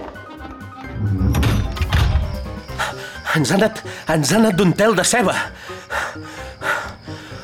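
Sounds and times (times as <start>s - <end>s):
door opening and closing: 0.5s - 2.6s
out-of-breath panting: 2.5s - 4.1s, 5.3s - 7.4s
speech: 3.4s - 6.4s.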